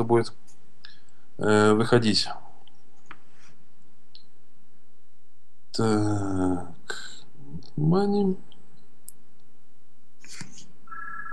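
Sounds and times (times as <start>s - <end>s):
speech: 0.0s - 0.5s, 1.4s - 2.4s, 5.8s - 8.5s
faint electronic telephone ring in another room: 10.9s - 11.3s.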